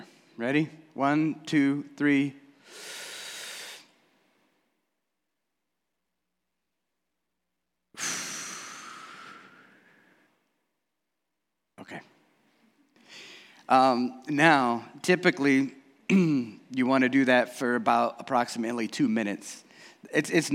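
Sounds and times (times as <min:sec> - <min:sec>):
speech: 0:00.4 - 0:03.0, 0:11.8 - 0:12.1, 0:13.7 - 0:20.5
deep breaths in and out during a guided breathing exercise: 0:02.5 - 0:04.6, 0:07.9 - 0:10.5, 0:12.6 - 0:13.7, 0:19.6 - 0:20.1.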